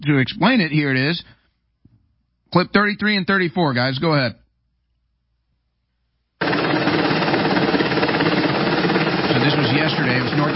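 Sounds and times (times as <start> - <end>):
speech: 0.0 - 1.4, 2.5 - 4.4
helicopter rotor chop landing on a supply area in North Carolina: 6.4 - 10.5.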